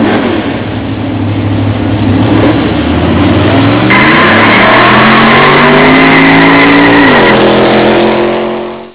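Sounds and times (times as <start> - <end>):
engines revving: 0.0 - 8.9
tyres screeching on a fast start: 3.9 - 8.1.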